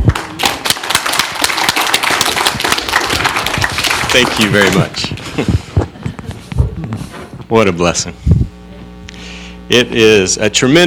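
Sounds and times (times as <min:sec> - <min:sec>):
audience in a church applauding a speaker: 0:00.0 - 0:05.3
speech: 0:04.2 - 0:05.6, 0:07.5 - 0:08.3, 0:09.7 - 0:10.8.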